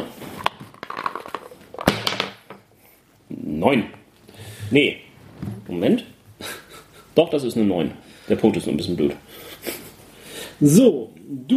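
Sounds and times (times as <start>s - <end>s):
twenty-sided die rattling and tumbling across a hard surface: 0.4s - 2.6s
speech: 3.6s - 4.0s, 4.7s - 5.0s, 5.7s - 6.1s, 7.2s - 9.5s, 10.6s - 11.5s.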